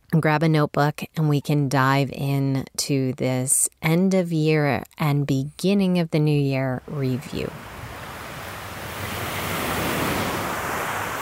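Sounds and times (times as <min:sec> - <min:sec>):
speech: 0:00.1 - 0:07.7
wind noise: 0:06.8 - 0:11.2
ocean surf washing onto a beach: 0:07.0 - 0:11.2.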